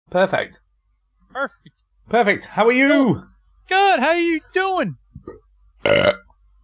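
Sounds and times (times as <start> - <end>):
speech: 0.1 - 0.7, 1.3 - 6.2
loud throaty belch: 5.8 - 6.2.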